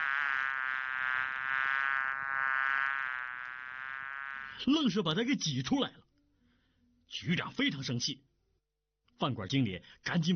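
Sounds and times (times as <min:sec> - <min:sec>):
many flies buzzing in a restaurant toilet: 0:00.0 - 0:04.7
speech: 0:04.6 - 0:06.0, 0:07.2 - 0:08.3, 0:09.2 - 0:10.3.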